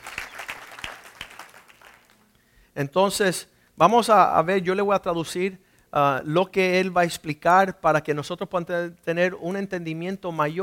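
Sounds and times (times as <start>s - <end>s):
audience applause: 0.0s - 2.2s
speech: 2.8s - 10.6s.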